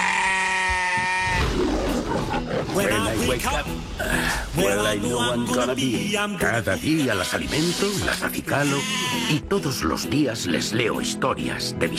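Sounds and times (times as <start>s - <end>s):
flock of sheep bleating: 0.0s - 1.5s
speech: 2.8s - 11.9s.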